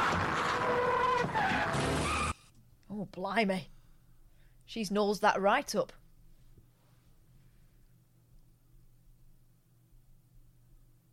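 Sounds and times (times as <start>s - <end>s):
car tyres skidding in a sudden swerve: 0.0s - 2.4s
speech: 3.0s - 3.8s, 4.7s - 6.0s.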